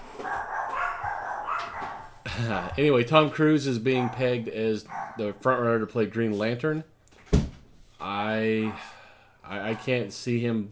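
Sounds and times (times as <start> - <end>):
dogs barking: 0.0 - 2.2, 3.8 - 5.6, 8.6 - 8.9
steady low noise: 0.0 - 10.6
speech: 2.4 - 6.9, 8.1 - 8.9, 9.5 - 10.6.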